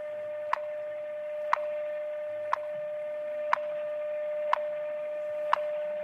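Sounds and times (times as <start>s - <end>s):
steady thin electronic hum: 0.0s - 6.0s
telephone time signal ticks: 0.4s - 0.8s, 1.4s - 2.8s, 3.4s - 3.8s, 4.4s - 4.8s, 5.4s - 5.8s.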